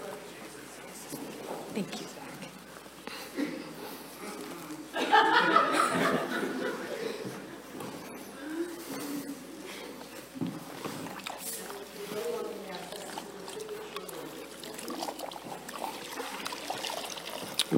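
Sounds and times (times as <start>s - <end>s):
people murmuring quietly in a church: 0.0s - 17.7s
speech: 1.8s - 2.2s
laughter: 3.1s - 10.2s
water poured into a basin while washing a woman's feet in a church: 11.0s - 17.7s.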